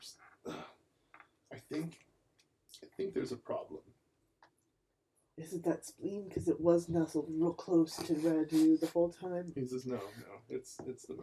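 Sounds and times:
person giving a short gravelly throat clear: 0.5 - 0.8
person giving quick coughs: 0.5 - 0.8
speech: 1.7 - 2.1, 3.0 - 4.0, 5.4 - 11.2.

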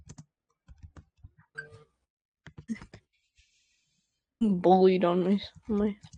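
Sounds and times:
typing on a keyboard: 0.0 - 1.0, 5.6 - 6.1
speech: 4.4 - 6.1.

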